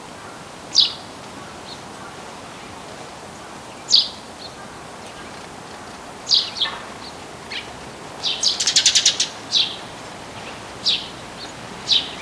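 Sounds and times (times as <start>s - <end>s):
Eurasian tree sparrow Passer montanus chirping: 6.2s - 12.2s.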